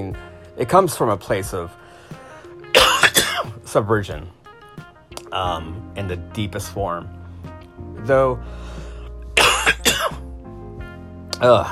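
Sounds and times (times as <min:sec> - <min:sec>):
speech: 0:00.0 - 0:01.8, 0:03.7 - 0:04.4, 0:05.3 - 0:07.2, 0:07.9 - 0:08.8, 0:11.4 - 0:11.7
person coughing: 0:02.7 - 0:03.6, 0:09.4 - 0:10.3.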